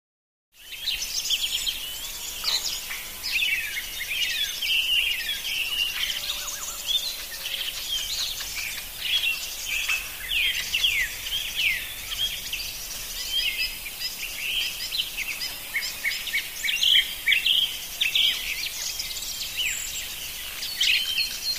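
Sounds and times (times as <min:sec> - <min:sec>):
active country birds: 0:00.6 - 0:21.5.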